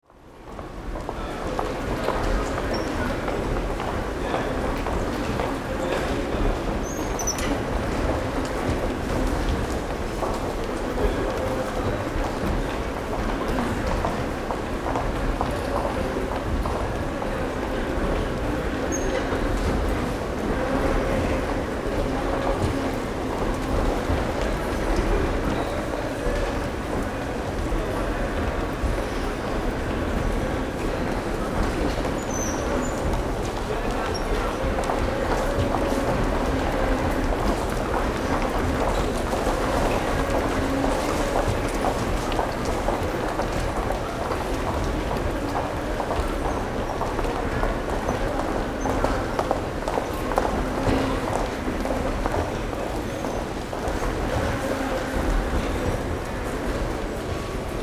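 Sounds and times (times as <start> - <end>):
foyer ambience: 0.0 - 57.8.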